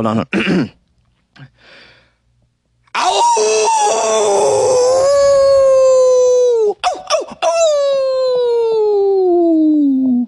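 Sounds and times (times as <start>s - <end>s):
speech: 0.0s - 0.8s, 1.4s - 1.9s, 3.0s - 5.2s
grown man in a closet howling like a wolf: 3.0s - 10.2s.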